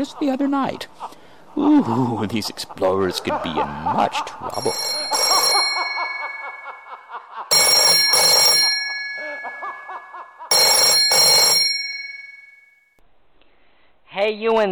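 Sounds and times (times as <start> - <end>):
speech: 0.0 - 5.6, 14.2 - 14.7
laughter: 0.0 - 11.5
old-fashioned telephone bell ringing: 4.5 - 12.8.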